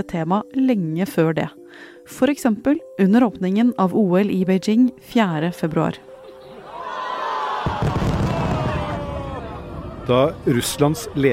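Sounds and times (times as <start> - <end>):
speech: 0.0 - 6.1, 10.1 - 11.3
roar of a large crowd at the national stadium in Beijing: 6.6 - 11.1
fireworks over the national stadium in Beijing at the Winter Olympics opening: 7.6 - 10.1.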